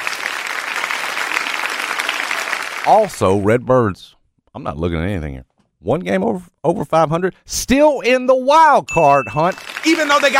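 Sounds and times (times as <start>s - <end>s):
crowd applause: 0.0s - 3.4s, 9.4s - 10.3s
speech: 2.8s - 10.3s.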